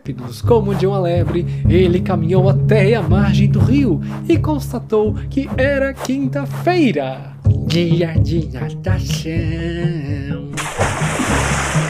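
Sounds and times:
speech: 0.0 - 10.4
heavy splash of a man in armour jumping into a river: 10.6 - 11.8.

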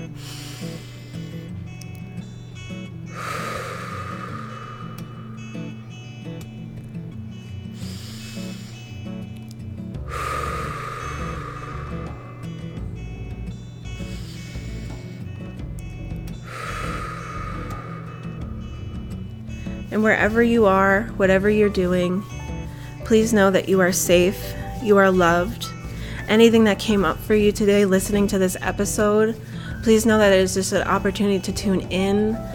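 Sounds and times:
deep breaths in and out: 0.0 - 1.7, 3.0 - 6.4, 7.3 - 9.2, 10.0 - 19.9, 22.2 - 23.0, 25.6 - 26.3, 29.3 - 29.8
low steady drone: 0.0 - 32.5
speech: 20.0 - 22.3, 23.1 - 25.7, 26.3 - 32.5.

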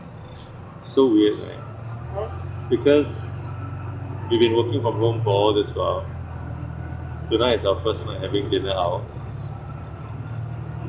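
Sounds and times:
continuous road noise: 0.0 - 10.8
low engine rumble: 0.0 - 10.8
speech: 0.8 - 3.4, 4.3 - 6.1, 7.3 - 9.1.

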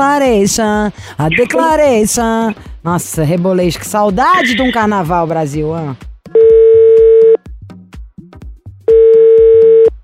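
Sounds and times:
speech: 0.0 - 6.1
outgoing phone call ringback tones: 6.4 - 7.4, 8.9 - 9.9.

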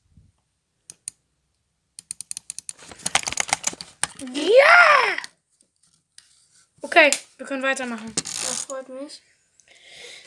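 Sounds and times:
computer mouse right-clicks and sharp plastic clicks: 0.9 - 1.2, 2.0 - 4.2
speech: 4.2 - 5.2, 7.0 - 9.3.

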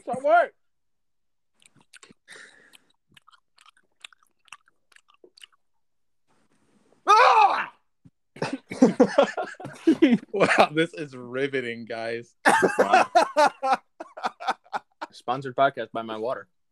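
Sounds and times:
speech: 0.2 - 0.6, 9.0 - 9.4, 10.0 - 13.8, 15.2 - 16.6
crunchy food being chewed: 1.6 - 5.8
laughter: 8.4 - 10.8, 12.5 - 15.2.

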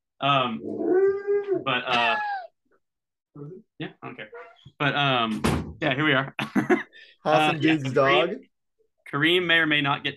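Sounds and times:
speech: 0.2 - 2.4, 3.4 - 8.5, 9.1 - 10.1
dog howling in long wavering tuneful notes: 0.6 - 2.5.

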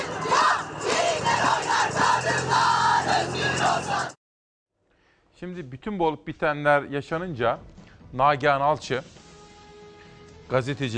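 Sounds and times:
large crowd of women shouting protest slogans while marching on a street in Istanbul: 0.0 - 4.2
speech: 5.4 - 9.2, 10.5 - 10.9.

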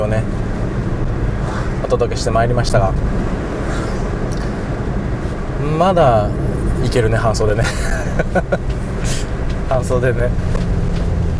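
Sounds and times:
speech: 0.0 - 0.5, 1.8 - 3.9, 5.6 - 8.8, 9.7 - 10.6
road and engine rumble inside a moving car: 0.0 - 11.3
laughter: 7.5 - 8.9.

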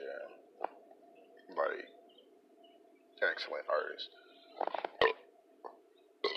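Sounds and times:
speech: 3.4 - 5.0
small burp: 5.0 - 5.3.

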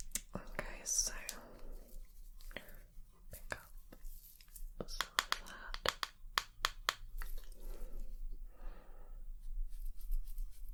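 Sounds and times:
soft breathy whispers: 0.3 - 5.8, 7.3 - 10.7
dry tapping: 4.8 - 7.3.

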